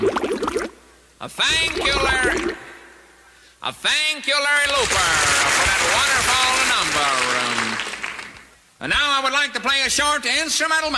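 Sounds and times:
bubbling sound effect with gurgling watery pops: 0.0s - 0.8s, 1.5s - 2.8s
speech: 1.2s - 2.7s, 3.6s - 7.6s, 8.8s - 10.9s.

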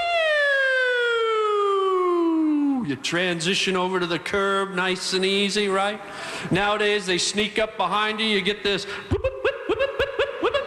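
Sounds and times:
voice imitating a soothing police siren: 0.0s - 2.9s
speech: 2.9s - 9.2s
laughter: 9.0s - 10.6s.

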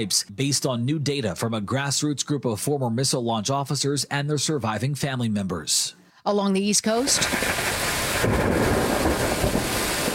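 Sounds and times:
speech: 0.0s - 9.7s
steady roar of heavy rain in Reading, Pennsylvania: 7.0s - 10.1s
thunder rolling in a thunderstorm in Reading, Pennsylvania: 7.0s - 10.1s.

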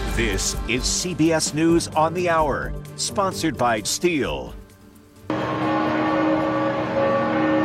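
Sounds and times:
speech: 0.2s - 4.6s
church bells ringing at a basilica: 5.3s - 7.6s.

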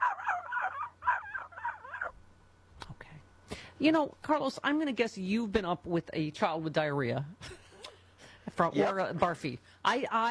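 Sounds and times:
distant dog barking: 0.0s - 2.2s
low hum: 0.0s - 10.2s
speech: 3.8s - 7.6s, 8.6s - 10.2s.

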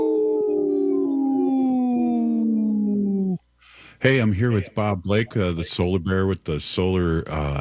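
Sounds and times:
person imitating a wolf howl: 0.0s - 3.4s
speech: 4.0s - 7.5s.

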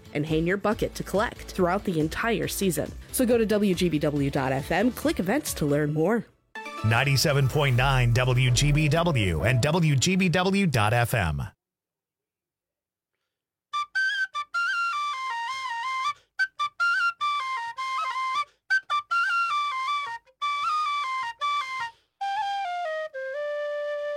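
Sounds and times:
speech: 0.1s - 11.6s
tin whistle playing a quick lilting melody: 13.8s - 24.1s.

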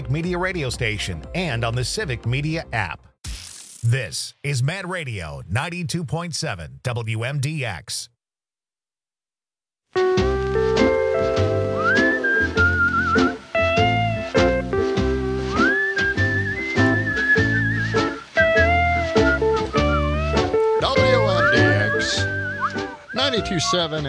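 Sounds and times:
upbeat band track with drums and bass: 0.0s - 3.0s, 10.0s - 24.0s
speech: 0.1s - 3.1s, 3.8s - 8.1s, 23.4s - 24.0s
whistled melody: 10.0s - 24.0s.

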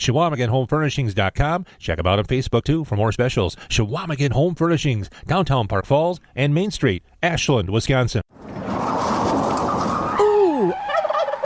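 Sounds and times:
speech: 0.0s - 9.0s
turkey gobbling: 8.6s - 11.4s.

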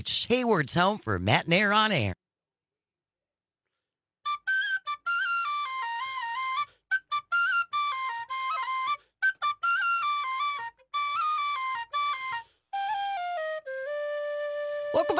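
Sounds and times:
speech: 0.0s - 2.2s
tin whistle playing a lively ornamented melody: 4.3s - 15.1s.

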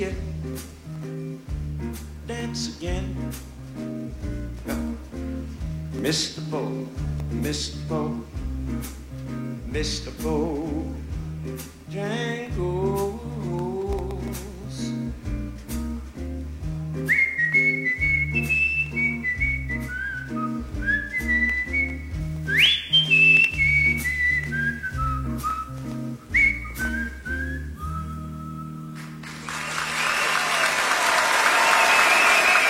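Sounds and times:
music: 0.0s - 32.6s
speech: 6.0s - 9.0s, 9.7s - 12.3s
high whistled notes gliding: 17.0s - 30.7s, 31.5s - 32.6s
large concert crowd applauding and cheering: 28.9s - 32.6s.

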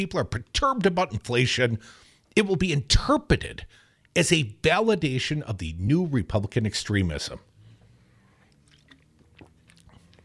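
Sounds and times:
speech: 0.0s - 7.5s
person sipping a drink: 8.0s - 10.2s.

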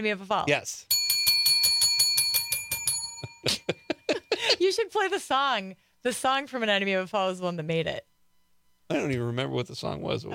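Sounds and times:
speech: 0.0s - 0.9s, 4.6s - 8.1s, 8.9s - 10.3s
bicycle bell ringing: 0.9s - 4.1s.

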